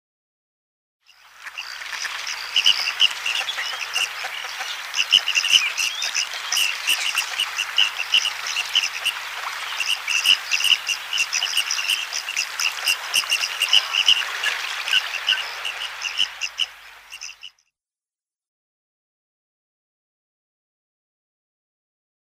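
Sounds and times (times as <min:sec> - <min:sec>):
Red-crested Pochard flock: 0:01.3 - 0:17.5.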